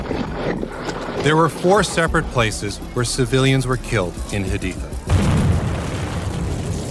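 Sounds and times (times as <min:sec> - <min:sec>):
speech: 0:01.2 - 0:05.3
IED explosion boom: 0:05.1 - 0:06.8.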